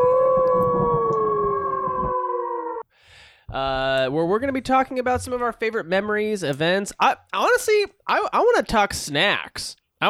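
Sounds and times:
wolf howling: 0.0s - 2.8s
speech: 3.5s - 10.0s.

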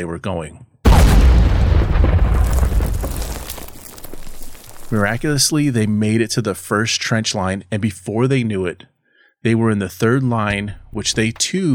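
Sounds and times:
speech: 0.0s - 0.7s, 4.9s - 11.7s
high explosive artillery shells exploding: 0.9s - 6.0s.

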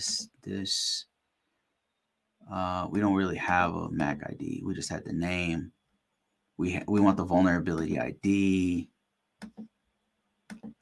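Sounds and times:
speech: 0.0s - 1.1s, 2.4s - 5.8s, 6.6s - 9.7s
faint steady hum: 0.0s - 10.8s
computer mouse double-clicks: 9.4s - 9.7s, 10.5s - 10.8s.

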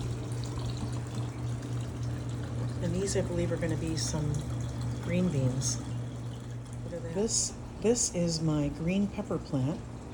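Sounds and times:
water trickling down the side of a tower garden: 0.0s - 7.9s
low pump-like hum: 0.0s - 10.1s
speech: 2.9s - 5.9s, 7.1s - 9.9s.

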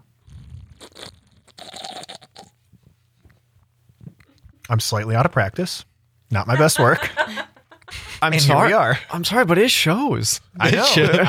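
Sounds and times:
person slurping a drink: 0.3s - 2.5s
mouth smacking and clicks: 0.3s - 2.6s
speech: 4.7s - 7.4s, 8.2s - 11.2s
laughter: 6.4s - 9.2s, 10.6s - 11.2s.

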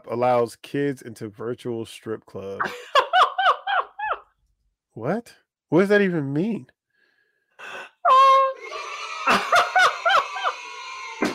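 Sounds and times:
speech: 0.1s - 3.0s, 5.0s - 6.8s
laughter: 2.6s - 4.2s, 8.6s - 11.3s
children screaming and cheering excitedly: 8.6s - 11.3s.

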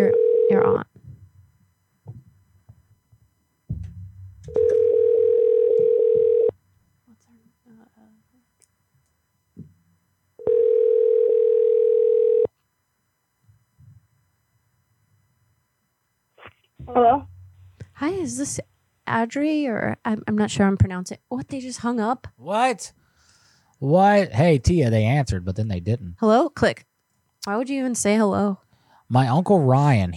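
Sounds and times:
ringback tone of an outgoing phone call waiting to be answered: 0.0s - 0.8s, 4.5s - 6.6s, 10.4s - 12.5s
speech: 18.3s - 23.0s, 23.8s - 30.1s.

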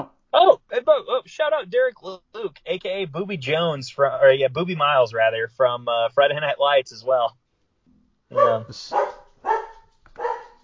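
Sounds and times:
speech: 1.4s - 7.4s, 8.3s - 9.2s
dog barking: 8.3s - 10.6s.

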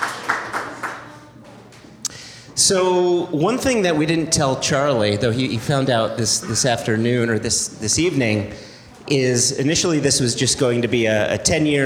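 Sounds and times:
audience clapping in Chicago: 0.0s - 1.8s
crowd noise: 0.0s - 11.8s
speech: 2.6s - 11.8s.

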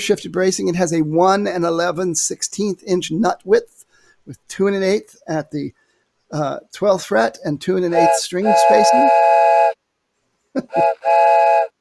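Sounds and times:
speech: 0.0s - 9.4s, 10.6s - 11.4s
steam train whistle: 8.0s - 9.8s, 10.7s - 11.7s.

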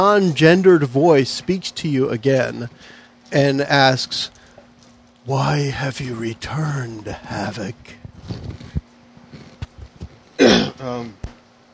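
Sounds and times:
speech: 0.0s - 4.4s, 5.3s - 8.5s, 10.4s - 11.3s
rough forceful cough: 10.4s - 10.8s.

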